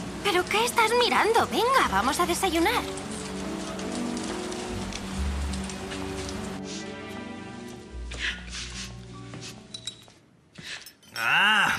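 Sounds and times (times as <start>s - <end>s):
steady rain pattering on a hard surface: 0.0s - 7.9s
sharper drips: 0.1s - 6.6s
speech: 0.2s - 3.0s, 11.2s - 11.7s.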